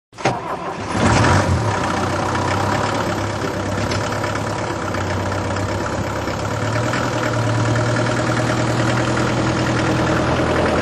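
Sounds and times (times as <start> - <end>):
truck: 0.1 - 10.8.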